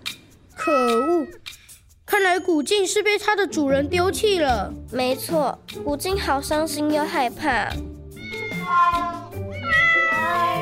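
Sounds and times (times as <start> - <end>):
speech: 0.7 - 1.4, 2.4 - 7.9
family of cats of different sizes meowing: 8.2 - 10.6.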